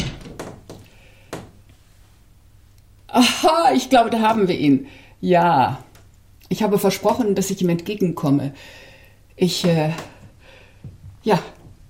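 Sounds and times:
window being closed on a cold day: 0.0 - 0.8
speech: 3.1 - 5.9, 6.5 - 10.1, 11.2 - 11.6.

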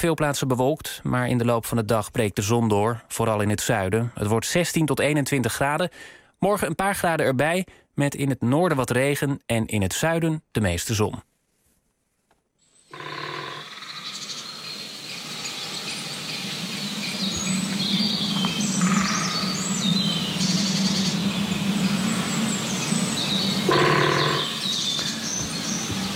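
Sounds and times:
speech: 0.0 - 11.3
steady forest ambience in the Pijnenburg woods near Soest: 12.6 - 26.1
great spotted woodpecker drumming on a resonant tree trunk: 12.8 - 26.1
birdsong: 12.9 - 26.1.

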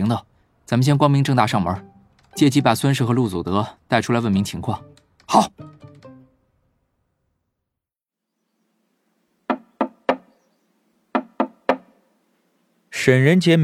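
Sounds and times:
speech: 0.0 - 5.9, 13.0 - 13.6
knocking on a door: 9.5 - 10.3, 11.2 - 11.9.

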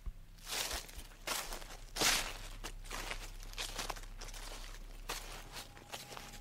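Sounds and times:
low steady hum: 0.0 - 6.3
footsteps on dry leaves in a garden at night: 0.3 - 6.3.

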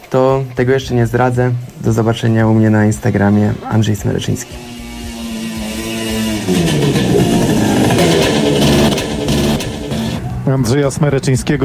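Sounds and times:
speech: 0.1 - 4.8, 6.5 - 6.8, 10.5 - 11.6
motor scooter engine running on illegal fuel: 4.5 - 10.3.

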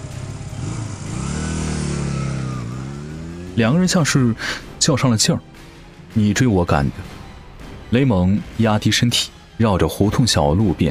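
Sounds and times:
motorcycle engine revving and pulling away in pursuit of a sports car: 0.0 - 4.4
speech: 3.6 - 7.2, 7.9 - 10.8.

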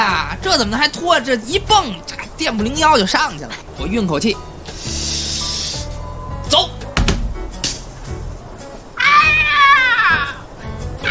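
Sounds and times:
low rumbling noise: 0.0 - 11.1
speech: 0.4 - 4.5
feral cat yowling after being struck: 9.0 - 11.1.

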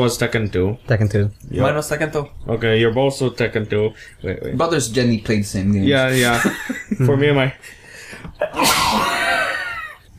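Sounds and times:
speech: 0.0 - 7.8
person sneezing: 8.4 - 9.2.

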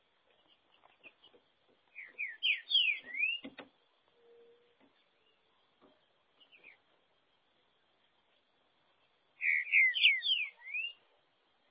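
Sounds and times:
green-winged saltator singing slurred whistles: 1.9 - 3.5, 9.4 - 11.0.

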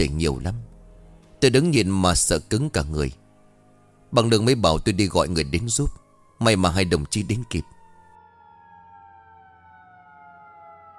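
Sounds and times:
speech: 0.0 - 0.6, 1.4 - 3.2, 4.1 - 7.8
police truck siren wailing as the vehicle speeds past: 2.3 - 10.9.

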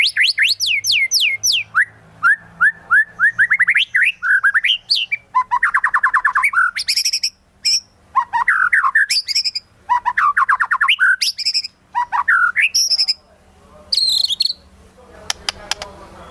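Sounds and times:
White-rumped shama song: 0.0 - 16.2
sharp clicks of white-rumped shama: 15.3 - 16.0.

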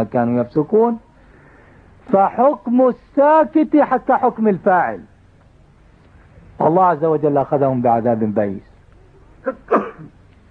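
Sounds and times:
speech: 0.0 - 1.1, 2.1 - 5.1, 6.6 - 8.7, 9.4 - 10.2
human sneeze during a lecture: 9.4 - 10.1.

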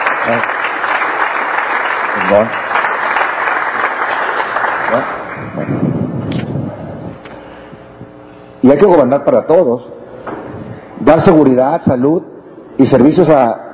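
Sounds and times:
audience applause at a recognition ceremony: 0.0 - 5.9
speech: 0.3 - 0.6, 2.2 - 2.7, 4.9 - 6.8, 8.6 - 9.9, 11.0 - 13.6.

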